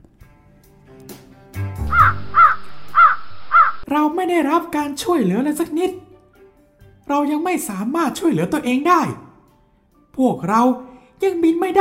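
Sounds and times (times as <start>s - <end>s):
young crows cawing harshly: 1.8s - 3.8s
speech: 3.9s - 6.0s, 7.1s - 9.2s, 10.2s - 11.7s.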